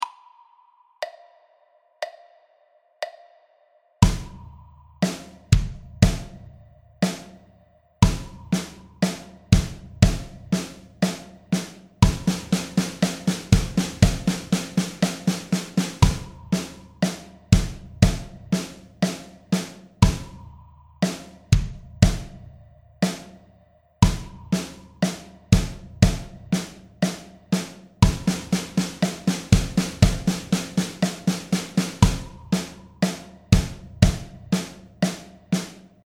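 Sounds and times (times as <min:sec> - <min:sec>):
drum: 0:04.0 - 0:36.0.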